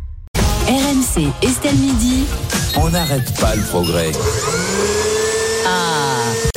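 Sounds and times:
speech: 0:00.7 - 0:05.0
vacuum cleaner running: 0:03.8 - 0:06.5.

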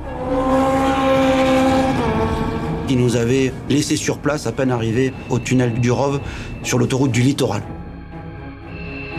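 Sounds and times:
motorcycle engine at high revs racing off: 0:00.0 - 0:03.7
speech: 0:02.9 - 0:07.8.

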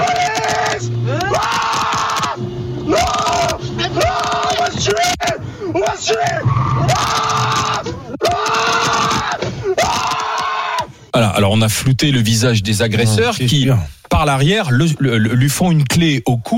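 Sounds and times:
man screaming during assault in car: 0:00.0 - 0:10.9
speech: 0:11.4 - 0:16.5.

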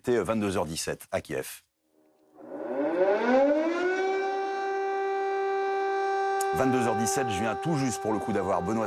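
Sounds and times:
speech: 0:00.0 - 0:01.7, 0:06.5 - 0:08.8
air raid siren in Kyiv during night bombardment: 0:02.4 - 0:08.8.

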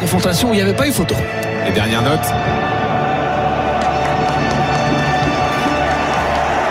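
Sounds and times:
speech: 0:00.1 - 0:02.9
huge football stadium crowd roaring and cheering: 0:01.6 - 0:06.7.

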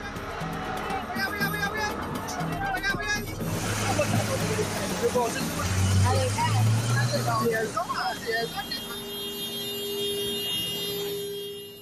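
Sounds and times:
crowd noise: 0:00.0 - 0:09.2
car horns honking on a busy flooded street: 0:04.0 - 0:11.8.

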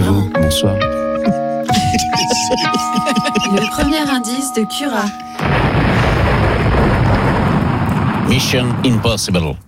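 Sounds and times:
speech: 0:00.5 - 0:00.9, 0:02.5 - 0:06.7, 0:08.4 - 0:09.6
laughter: 0:01.2 - 0:04.2
rocket launch roar: 0:05.4 - 0:09.5.

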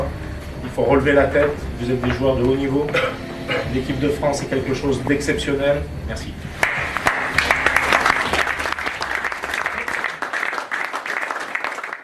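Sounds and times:
speech: 0:00.7 - 0:06.5
group of people applauding: 0:06.6 - 0:12.0.

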